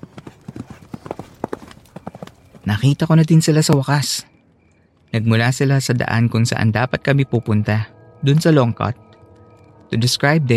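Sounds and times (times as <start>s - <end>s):
horse hooves clip-clopping on a hard surface: 0.0s - 3.0s
speech: 2.7s - 4.3s, 5.1s - 9.1s, 9.9s - 10.5s.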